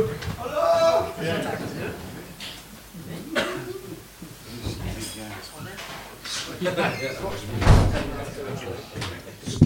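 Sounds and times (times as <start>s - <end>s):
faint voices: 0.0s - 9.6s
speech: 6.6s - 9.2s
door pushed shut with a solid thump: 7.2s - 8.5s.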